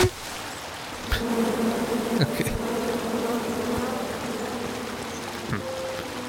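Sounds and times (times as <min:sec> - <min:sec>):
swarm of bees buzzing in a video game: 0:00.9 - 0:06.2
person speaking: 0:01.0 - 0:05.7
person laughing: 0:02.2 - 0:02.6.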